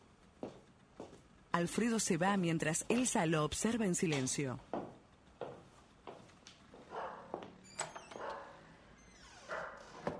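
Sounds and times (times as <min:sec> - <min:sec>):
speech: 0:01.6 - 0:04.7
dog barking: 0:06.9 - 0:07.4, 0:08.2 - 0:08.7, 0:09.5 - 0:10.0.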